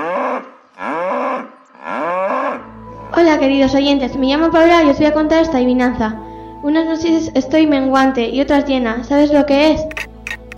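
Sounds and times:
cow mooing: 0:00.0 - 0:02.8
speech: 0:03.2 - 0:10.0.

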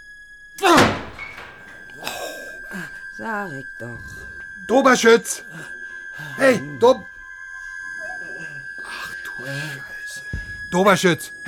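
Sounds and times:
brief door rattle: 0:00.6 - 0:02.0
door forced open with heavy thunk: 0:00.6 - 0:02.2
speech: 0:03.2 - 0:07.1, 0:09.4 - 0:09.9, 0:10.7 - 0:11.4.

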